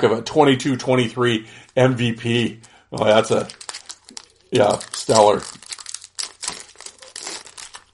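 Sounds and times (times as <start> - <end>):
speech: 0.0 - 3.6, 4.5 - 5.6
plastic wrapper of a hockey card pack crinkling and tearing open: 3.0 - 7.9.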